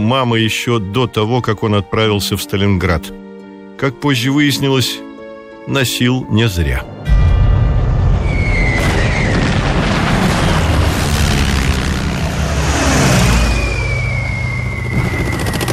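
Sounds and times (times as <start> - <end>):
speech: 0.0 - 7.0
warplanes roaring overhead with a descending whine: 6.9 - 15.7
bomb explosions booming and rumbling: 7.0 - 15.7.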